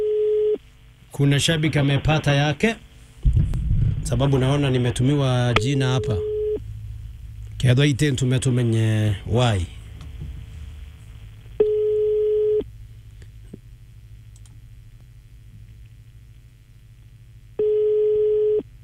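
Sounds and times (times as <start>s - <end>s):
telephone ringback tone on a call: 0.0s - 0.6s, 5.6s - 6.6s, 11.6s - 12.6s, 17.6s - 18.6s
faint low rumble: 0.0s - 18.8s
speech: 1.2s - 3.4s, 4.1s - 6.3s, 7.6s - 9.8s.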